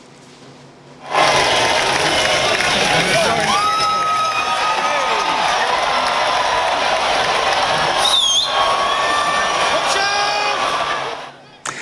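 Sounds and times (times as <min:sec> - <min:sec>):
large outdoor crowd cheering and shouting at a cheese-rolling race: 0:01.0 - 0:11.6
whoops and yells: 0:03.2 - 0:11.3.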